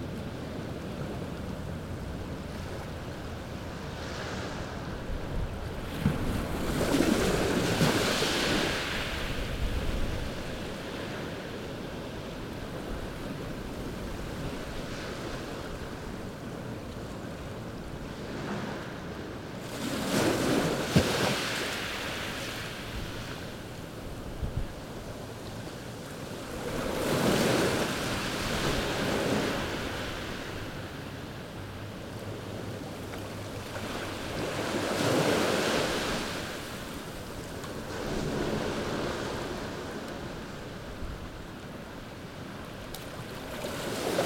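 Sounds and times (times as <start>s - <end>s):
low rumble and hiss of surf: 0.0s - 44.2s
waves crashing on a beach: 0.0s - 44.2s
wind noise: 4.8s - 10.8s, 24.2s - 24.8s.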